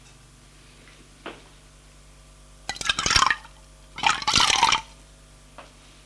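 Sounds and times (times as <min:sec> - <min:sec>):
boiling-hot coffee pouring into a bowl: 0:02.7 - 0:04.9.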